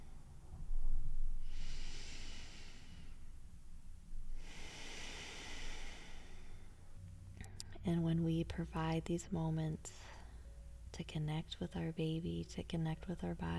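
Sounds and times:
faint noise: 0:00.0 - 0:13.5
long full exhale of breath: 0:01.4 - 0:03.3, 0:04.4 - 0:06.8
speech: 0:07.9 - 0:10.1, 0:11.0 - 0:13.5.

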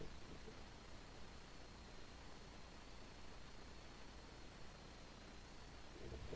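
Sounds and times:
microphone hiss: 0:00.0 - 0:06.3.

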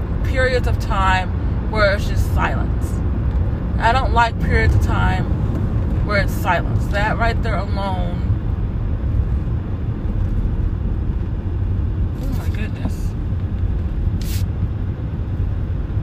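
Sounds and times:
car engine rumble outside: 0:00.0 - 0:16.0
speech: 0:00.5 - 0:03.0, 0:03.8 - 0:05.4, 0:06.1 - 0:08.3
brief hissing bursts: 0:14.2 - 0:14.5.

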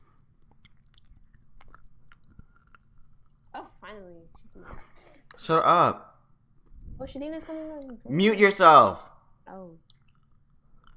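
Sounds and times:
chewing candy: 0:00.0 - 0:03.6, 0:09.8 - 0:10.9
speech: 0:04.0 - 0:06.0, 0:07.0 - 0:09.9.

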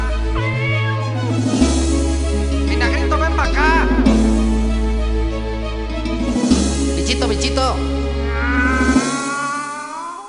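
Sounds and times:
steady musical backing with deep sustained bass notes: 0:00.0 - 0:09.9
cat meowing: 0:00.3 - 0:01.3, 0:08.3 - 0:10.2.

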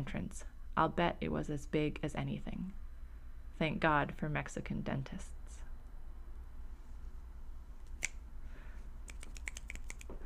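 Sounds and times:
speech: 0:00.0 - 0:02.8, 0:03.6 - 0:05.6
low hum: 0:00.0 - 0:10.2
audience finger snaps at a poetry reading: 0:09.0 - 0:10.1.

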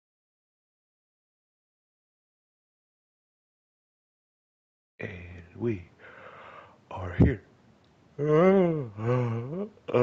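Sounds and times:
speech: 0:05.0 - 0:05.9, 0:06.9 - 0:07.5, 0:08.2 - 0:10.0
person yawning: 0:08.2 - 0:10.0.

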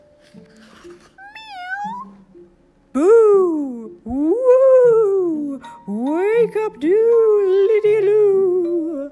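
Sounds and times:
faint steady hum: 0:00.0 - 0:09.1
high-pitched kitten meow: 0:01.2 - 0:02.2
speech: 0:06.6 - 0:07.6.

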